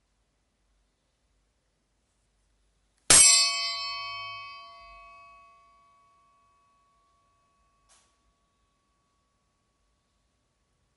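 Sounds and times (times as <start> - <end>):
meditation gong struck and ringing: 3.1 - 7.9.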